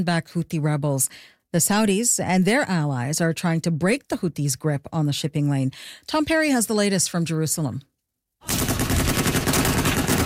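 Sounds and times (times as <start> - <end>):
speech: 0.0 - 8.7
heavy machine guns mounted on pickup trucks firing in Yemen: 8.5 - 10.2.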